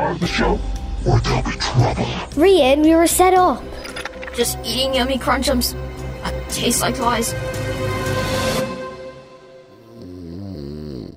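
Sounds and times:
speech: 0.1s - 3.8s, 4.3s - 5.8s, 6.5s - 7.6s
person snoring in a shared bedroom: 9.7s - 11.1s.

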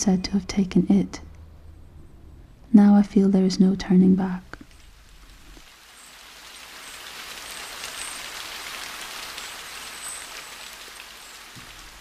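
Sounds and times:
speech: 0.0s - 1.2s, 2.7s - 4.6s
steady rain pattering on cement, stone and a plastic mac: 3.8s - 11.9s.

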